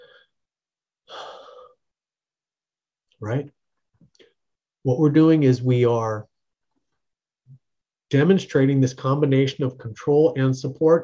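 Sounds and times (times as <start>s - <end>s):
person taking a deep breath calmly: 1.1s - 1.8s
speech: 3.2s - 4.2s, 4.8s - 6.3s, 8.1s - 11.0s.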